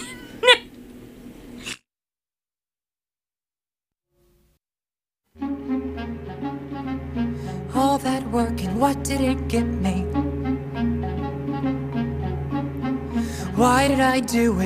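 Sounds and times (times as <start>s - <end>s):
cat meowing: 0.0s - 0.7s
music: 5.4s - 14.6s
speech: 8.3s - 10.0s, 13.6s - 14.6s.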